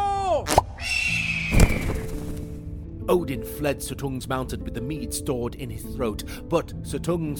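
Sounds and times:
eagle screech: 0:00.8 - 0:02.1
speech: 0:03.1 - 0:07.3.

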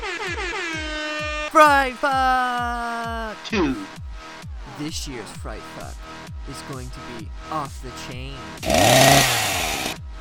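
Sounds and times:
speech: 0:01.5 - 0:03.9, 0:04.8 - 0:09.8
chainsaw revving: 0:08.6 - 0:10.0.

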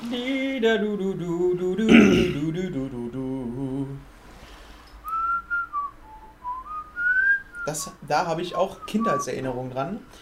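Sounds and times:
person humming a wordless tune: 0:00.0 - 0:04.0
speech: 0:00.1 - 0:03.2, 0:07.7 - 0:10.2
person whistling a short melodic phrase in clear bright notes: 0:05.0 - 0:07.8, 0:08.7 - 0:10.2.

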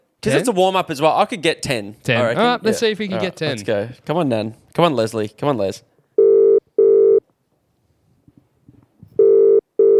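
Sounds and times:
speech: 0:00.2 - 0:05.9
ringback tone of an outgoing phone call: 0:06.2 - 0:07.2, 0:09.2 - 0:09.9.

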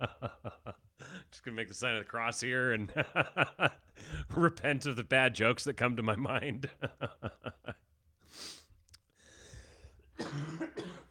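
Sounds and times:
speech: 0:01.4 - 0:07.1
person coughing: 0:10.2 - 0:11.0.

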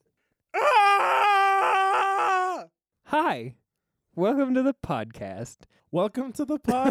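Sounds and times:
loud human scream: 0:00.5 - 0:02.7
speech: 0:03.3 - 0:03.6, 0:04.2 - 0:06.8.

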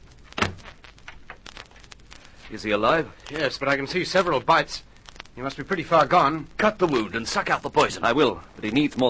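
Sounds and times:
faint rattling and shuffling as things settle: 0:00.0 - 0:09.0
door shutting with a solid thud: 0:00.4 - 0:00.7
speech: 0:02.5 - 0:09.0.

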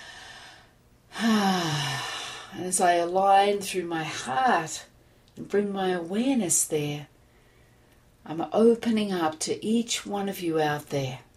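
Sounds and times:
person taking a deep conscious breath during a guided meditation: 0:00.0 - 0:02.6
speech: 0:02.6 - 0:07.1, 0:08.3 - 0:11.3.

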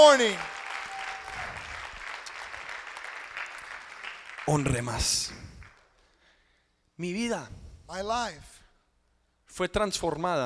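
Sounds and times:
speech: 0:00.0 - 0:00.6, 0:04.5 - 0:05.5, 0:07.0 - 0:08.5, 0:09.5 - 0:10.4
audience applause at a morning church service: 0:00.0 - 0:05.0.

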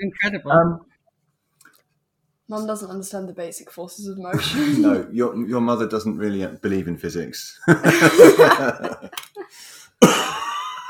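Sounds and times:
speech: 0:00.0 - 0:00.9, 0:02.5 - 0:10.5
person with a six-week cough coughing: 0:04.3 - 0:05.1, 0:10.0 - 0:10.6
laughter: 0:07.7 - 0:09.5.

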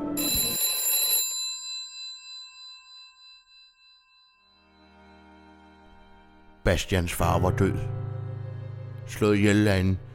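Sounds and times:
old-style telephone bell ringing: 0:00.0 - 0:05.1
speech: 0:06.7 - 0:08.0, 0:09.1 - 0:10.1.

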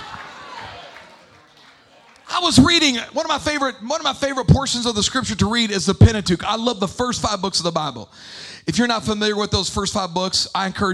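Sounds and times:
crowd murmuring and chattering: 0:00.0 - 0:03.6
speech: 0:02.4 - 0:10.9.

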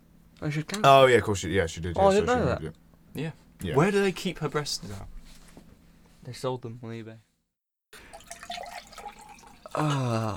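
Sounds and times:
speech: 0:00.4 - 0:05.1, 0:06.2 - 0:07.3, 0:09.8 - 0:10.3
liquid pouring and trickling: 0:08.0 - 0:10.0.

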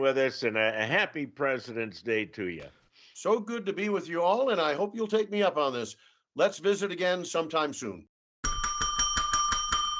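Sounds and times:
speech: 0:00.0 - 0:08.1
bell ringing rapidly with metallic strikes: 0:08.4 - 0:09.9.

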